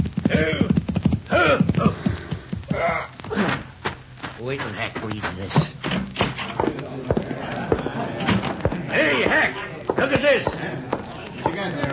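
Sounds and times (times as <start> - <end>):
rider's horse hooves clip-clopping to a halt: 0.0 - 2.8, 3.8 - 11.9
laughter: 6.6 - 11.9.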